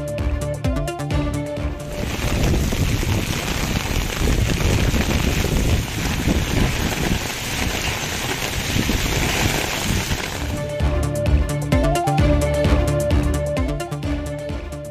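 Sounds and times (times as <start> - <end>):
rhythmic music track with sharp beats and a melody: 0.0 - 2.0, 10.6 - 14.8
summer rain falling in Tamil Nadu: 1.8 - 10.7.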